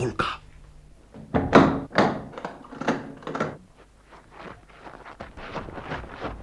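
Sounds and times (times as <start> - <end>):
heavy thuds knocking on a chapel door: 1.2 - 2.3
soft scattered footsteps moving about: 3.6 - 6.4.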